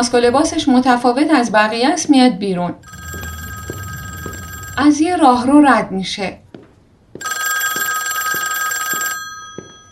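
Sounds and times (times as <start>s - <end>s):
speech: 0.0s - 2.9s, 4.8s - 6.4s
telephone bell ringing: 2.8s - 5.0s, 7.2s - 9.9s.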